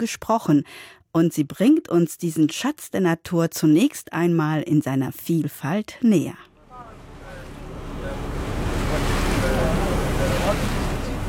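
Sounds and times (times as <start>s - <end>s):
speech: 0.0s - 6.5s
boat moving across open water: 6.6s - 11.2s.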